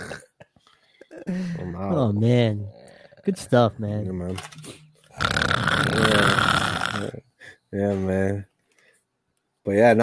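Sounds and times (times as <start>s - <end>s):
person gargling: 0.0s - 0.4s, 5.2s - 7.2s
speech: 1.3s - 4.8s, 5.8s - 8.5s, 9.6s - 10.0s.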